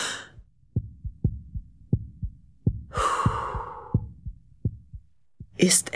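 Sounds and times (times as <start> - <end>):
slow deep breathing in and out: 0.0 - 1.4, 2.6 - 4.9
steady heartbeat thumping: 0.0 - 5.8
speech: 5.6 - 5.9.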